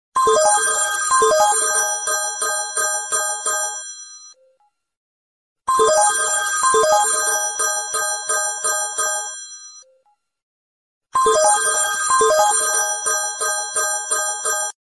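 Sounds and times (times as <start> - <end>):
Nokia mobile phone ringtone: 0.2 - 4.5, 5.7 - 10.0, 11.2 - 14.7.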